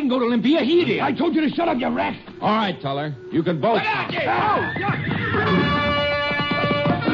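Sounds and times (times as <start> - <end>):
speech: 0.1 - 5.7
frightened horse rearing and whinnying: 4.2 - 6.4.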